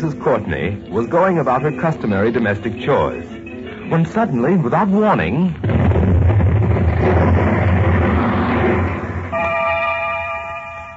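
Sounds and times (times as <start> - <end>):
speech: 0.0 - 6.2
rumbling crackling explosion: 5.6 - 9.4.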